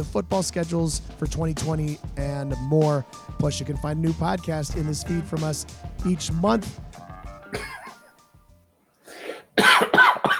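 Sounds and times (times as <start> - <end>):
speech: 0.0 - 6.9, 7.5 - 7.7
man coughing: 7.5 - 8.1, 9.2 - 10.3.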